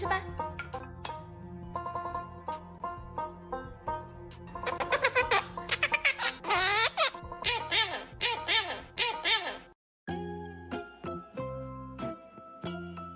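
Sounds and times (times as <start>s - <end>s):
bouncy music track: 0.0s - 13.1s
small frightened parrot squawking: 5.1s - 9.7s.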